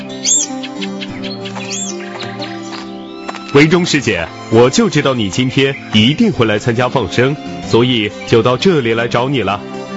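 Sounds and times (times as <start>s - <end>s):
small bird chirping as it is released at a Buddhist life-release event in Taiwan: 0.0s - 3.3s
soft music: 0.0s - 9.9s
speech: 3.6s - 9.7s.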